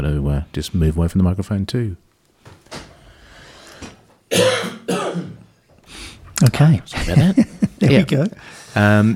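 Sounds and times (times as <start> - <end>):
speech: 0.0 - 2.8, 6.4 - 9.1
person clearing throat: 4.3 - 5.5
person coughing: 4.3 - 5.5
laughter: 6.9 - 8.4.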